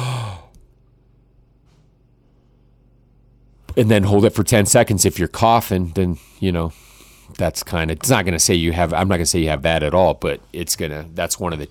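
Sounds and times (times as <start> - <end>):
deep breath from the stomach taken as a lung check: 0.0 - 0.6, 6.2 - 7.3
speech: 3.8 - 11.6.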